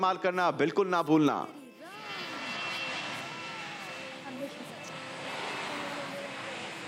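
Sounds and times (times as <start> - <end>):
speech: 0.0 - 1.6
airplane engine roar as the aircraft departs: 1.9 - 6.8.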